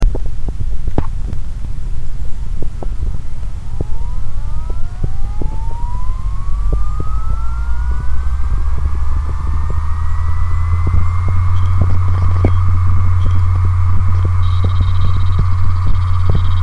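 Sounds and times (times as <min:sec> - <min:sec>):
WD 1TB hard drive with dead servo: 0:00.0 - 0:16.6.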